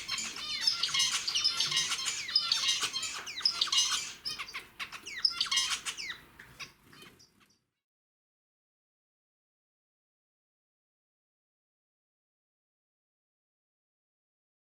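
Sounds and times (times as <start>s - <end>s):
zebra finch song: 0.0s - 7.7s.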